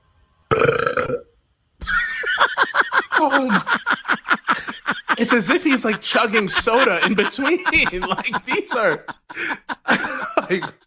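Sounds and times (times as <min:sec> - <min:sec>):
man burping: 0:00.5 - 0:01.3
speech: 0:01.1 - 0:01.3, 0:03.2 - 0:04.0, 0:05.2 - 0:09.7, 0:10.5 - 0:10.8
laughter: 0:01.8 - 0:10.8.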